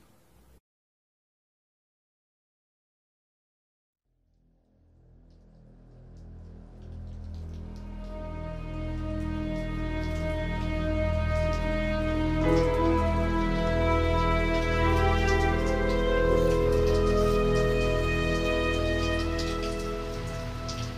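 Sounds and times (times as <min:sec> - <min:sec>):
steady rain falling at a quiet suburban edge: 0:05.2 - 0:20.9.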